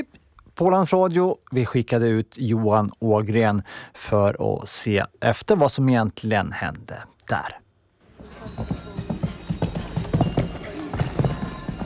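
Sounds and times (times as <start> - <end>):
speech: 0.0 - 7.6, 8.4 - 8.8
crowd murmur: 8.1 - 11.8
horse hooves clip-clopping on hard ground at show jumping championships: 8.1 - 11.8.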